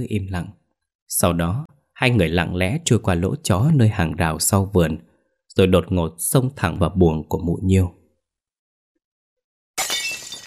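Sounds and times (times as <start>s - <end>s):
speech: 0.0s - 8.0s
bowl of rice porridge falling and shattering on brick floor: 9.8s - 10.4s.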